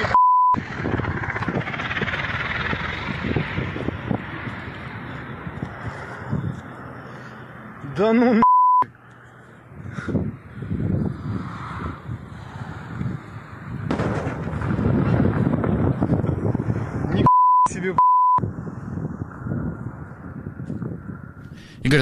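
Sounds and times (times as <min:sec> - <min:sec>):
short electronic bleeps: 0:00.1 - 0:00.6, 0:08.4 - 0:08.9, 0:17.3 - 0:18.4
wind noise: 0:00.6 - 0:06.8, 0:09.7 - 0:22.0
speech: 0:08.0 - 0:08.4
explosions booming and echoing in an outdoor urban space in Belgorod: 0:13.8 - 0:16.2.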